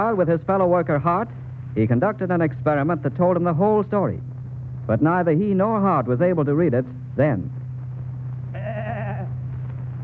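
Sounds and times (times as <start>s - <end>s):
speech: 0.0s - 7.6s
steady low hum: 0.0s - 10.0s
backyard goat bleating: 8.5s - 9.4s.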